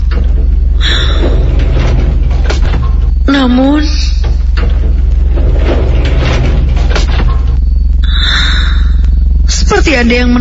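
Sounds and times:
lift sliding doors closing: 0:00.0 - 0:07.8
lift door motor whir: 0:00.0 - 0:09.7
steady low hum: 0:00.0 - 0:10.4
speech: 0:09.9 - 0:10.4.

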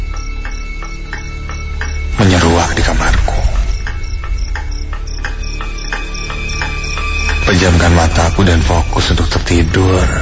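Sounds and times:
wall clock ticking: 0:00.0 - 0:08.2
speech: 0:07.5 - 0:10.2.

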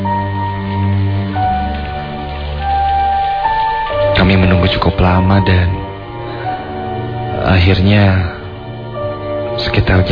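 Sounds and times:
steady rain falling on a surface: 0:00.0 - 0:10.1
speech: 0:04.7 - 0:05.8, 0:07.5 - 0:08.3, 0:09.6 - 0:10.1.

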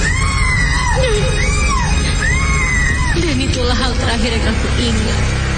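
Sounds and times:
woman screaming hysterically: 0:00.0 - 0:03.7
speech: 0:04.2 - 0:05.4.

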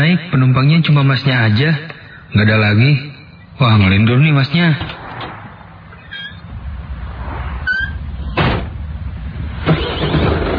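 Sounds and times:
speech: 0:00.0 - 0:05.0
low steady rumble: 0:03.4 - 0:10.5
car door shutting with a solid thud: 0:08.4 - 0:08.8.

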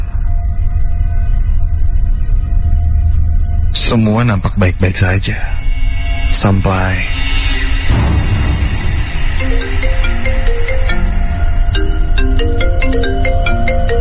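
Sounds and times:
faint low rumble: 0:00.0 - 0:14.0
speech: 0:03.9 - 0:05.6, 0:06.3 - 0:07.3
mobile phone ringtone: 0:09.4 - 0:14.0.

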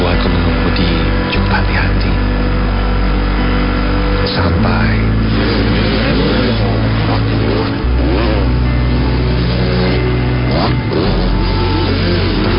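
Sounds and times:
loud motorcycle exhaust roaring on a winding road: 0:00.0 - 0:12.5.

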